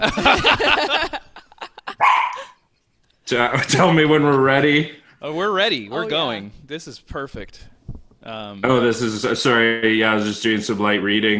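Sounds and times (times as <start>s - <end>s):
speech: 0.0s - 1.2s, 3.3s - 11.3s
laughter: 0.0s - 2.7s
dog barking: 2.0s - 2.6s.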